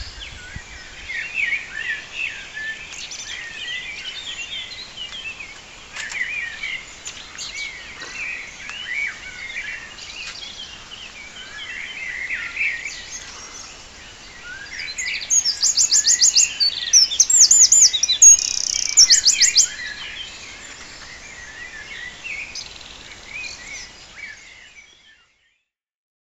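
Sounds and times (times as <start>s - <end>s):
birds chirping and warbling: 0.0s - 25.4s.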